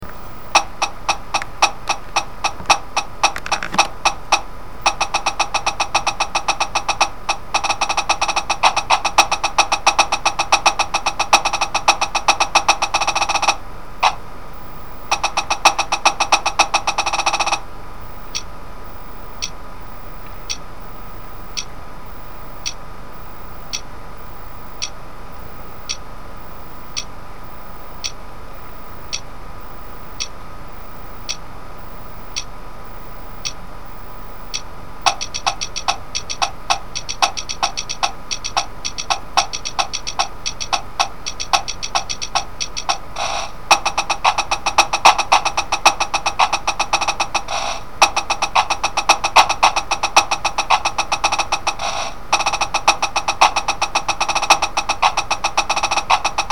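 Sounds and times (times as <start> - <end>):
drumline snare drum: 0.6 - 14.2, 15.1 - 17.6, 35.0 - 56.5.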